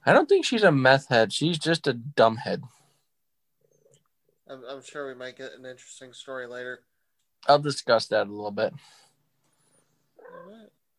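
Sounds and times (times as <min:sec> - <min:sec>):
speech: 0:00.0 - 0:02.8, 0:04.5 - 0:09.0, 0:10.3 - 0:10.8
cat purring: 0:10.1 - 0:10.8.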